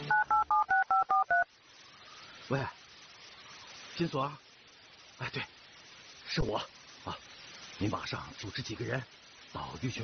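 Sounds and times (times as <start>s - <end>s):
telephone keypad two-tone dialing beeps: 0.1s - 1.4s
speech: 2.5s - 2.8s, 4.0s - 4.4s, 5.2s - 5.6s, 6.3s - 7.2s, 7.8s - 10.0s.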